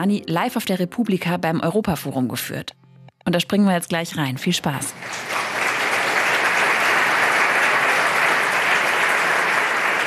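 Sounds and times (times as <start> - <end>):
speech: 0.0 - 5.5
sustained applause from a large live audience: 4.9 - 10.0.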